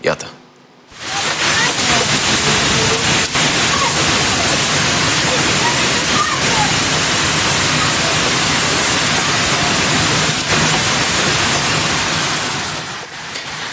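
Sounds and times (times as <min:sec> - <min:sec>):
large hailstones pelting down in a violent hailstorm: 0:01.0 - 0:13.7.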